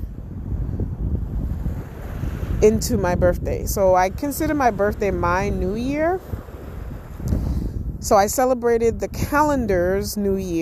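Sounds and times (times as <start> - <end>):
ocean surf rumble at the shore: 0.0 - 10.5
wind buffeting the microphone at the shore: 0.0 - 10.5
speech: 2.6 - 6.4, 8.0 - 10.5.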